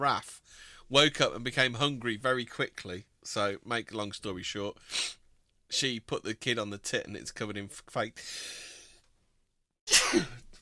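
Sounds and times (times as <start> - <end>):
speech: 0.0 - 8.7, 9.9 - 10.4
soft breath: 0.4 - 0.9, 8.2 - 9.1
sneeze: 9.9 - 10.4.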